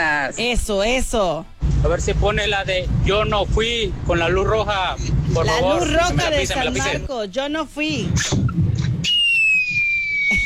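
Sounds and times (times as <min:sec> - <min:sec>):
noisy rumble: 0:00.0 - 0:09.1
speech: 0:00.2 - 0:08.4
firework rocket shrill whistle: 0:09.0 - 0:10.4.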